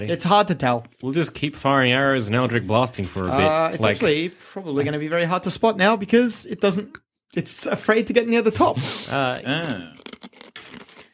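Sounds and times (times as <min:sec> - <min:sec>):
speech: 0:00.0 - 0:10.2
crunching a hard watermelon-flavoured rock lolly: 0:09.5 - 0:11.1.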